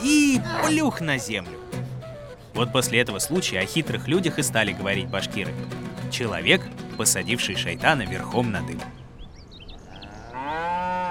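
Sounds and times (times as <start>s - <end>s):
speech: 0.4s - 1.7s, 2.6s - 9.0s
faint high bird chirps: 4.3s - 10.4s
cow mooing: 9.9s - 11.1s.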